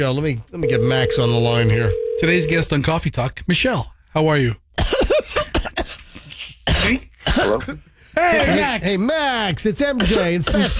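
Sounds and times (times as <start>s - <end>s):
speech: 0.0s - 5.4s, 6.8s - 10.7s
person coughing harshly: 4.8s - 6.0s, 6.7s - 7.7s, 10.0s - 10.7s.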